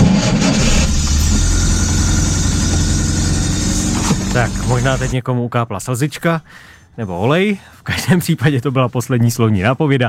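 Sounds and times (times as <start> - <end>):
Skoda 120 car engine running after being started: 0.2 - 5.2
speech: 4.4 - 10.0.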